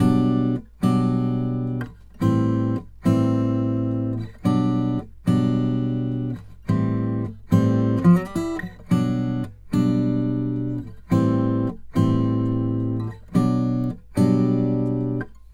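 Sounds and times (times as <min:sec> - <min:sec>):
country guitar: 0:00.0 - 0:15.5.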